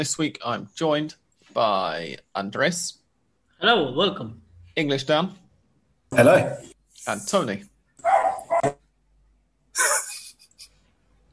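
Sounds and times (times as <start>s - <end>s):
speech: 0.0s - 3.0s, 3.6s - 5.4s, 6.1s - 7.7s
dog barking: 8.0s - 8.8s.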